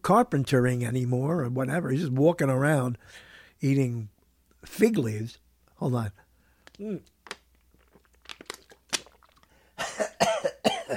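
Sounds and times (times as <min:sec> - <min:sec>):
speech: 0:00.0 - 0:06.2, 0:06.8 - 0:07.1
person coughing: 0:09.8 - 0:10.9.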